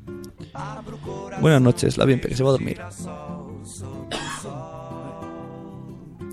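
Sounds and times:
speech: 0.6 - 3.3
person coughing harshly: 4.1 - 4.5
rough strained throat-clearing hum: 4.1 - 4.5.

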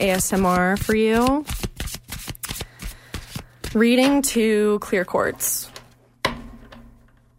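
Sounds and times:
speech: 0.0 - 1.6, 3.7 - 5.7
deck of tarot cards being shuffled: 0.0 - 4.2.

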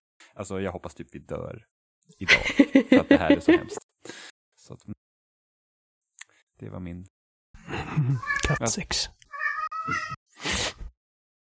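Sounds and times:
speech: 0.4 - 4.9, 6.6 - 7.2, 7.9 - 9.2, 9.8 - 10.2
laughter: 2.2 - 3.8
two cats yowling: 8.2 - 8.6, 9.3 - 10.2.

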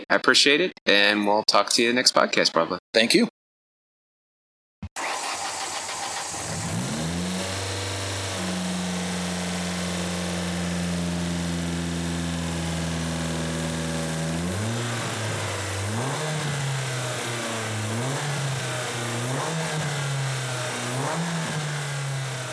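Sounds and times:
speech: 0.1 - 3.4
2003 Ford Focus SVT 2.0-liter Zetec engine starting, idling and revving: 5.0 - 22.5.

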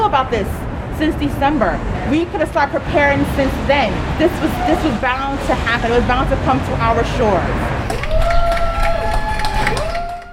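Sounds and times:
speech: 0.1 - 7.8
people clapping and cheering from open windows: 7.8 - 10.3.

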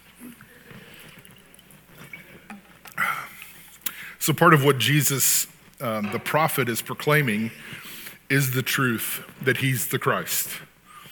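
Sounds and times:
person drinking water from a water bottle: 0.1 - 4.2
speech: 4.2 - 10.7.

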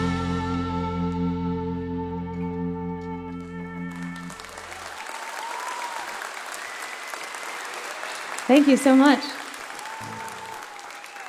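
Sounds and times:
brief low tone: 0.0 - 4.3
concert audience applauding a singer: 3.8 - 11.2
speech: 8.5 - 9.4.

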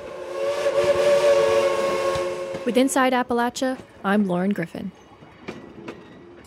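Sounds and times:
steam locomotive whistle at Cass, West Virginia: 0.0 - 3.0
speech: 2.6 - 5.0.

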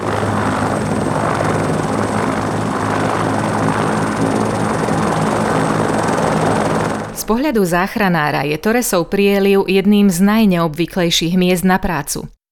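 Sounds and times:
rescue helicopter flying in the Torres Strait region: 0.0 - 8.5
speech: 7.3 - 12.4.

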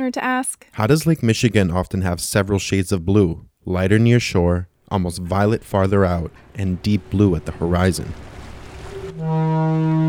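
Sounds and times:
speech: 0.0 - 8.3, 9.2 - 10.0
university research ship engine moving through Lake Michigan harbor: 4.9 - 10.0
rushing wash of water from research ship in Lake Michigan harbor: 5.3 - 9.4
loud steady low research ship horn blast: 6.2 - 10.0.

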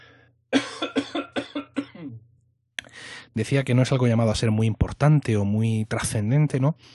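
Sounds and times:
person coughing harshly: 0.5 - 2.3
speech: 3.4 - 6.9.

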